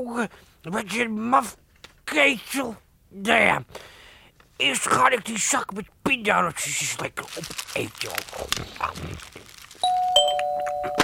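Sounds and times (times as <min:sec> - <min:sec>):
speech: 0:00.0 - 0:04.0, 0:04.6 - 0:09.6
doorbell ringing with two-tone ding-dong chime: 0:09.8 - 0:11.0.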